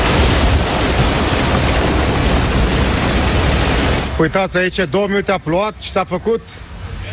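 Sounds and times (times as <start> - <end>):
storm wind roaring: 0.0 - 4.2
speech: 4.2 - 6.7.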